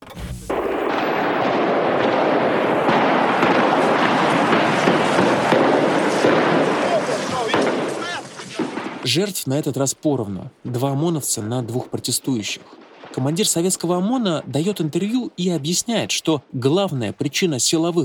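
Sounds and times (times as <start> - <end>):
dense chaotic gunfire: 0.1 - 9.3, 12.6 - 14.9
indistinct shouting voices: 2.7 - 9.1
speech: 9.1 - 18.0.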